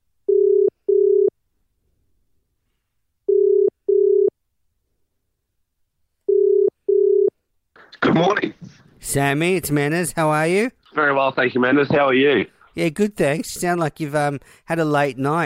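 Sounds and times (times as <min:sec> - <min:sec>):
ringback tone of an outgoing telephone call: 0:00.3 - 0:01.3, 0:03.3 - 0:04.3, 0:06.3 - 0:07.3
speech: 0:08.0 - 0:15.4.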